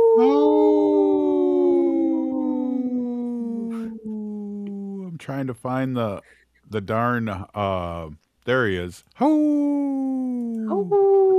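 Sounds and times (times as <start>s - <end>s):
single long wolf howl: 0.0s - 5.1s, 10.7s - 11.3s
speech: 0.2s - 0.7s, 5.3s - 9.9s, 10.7s - 11.2s.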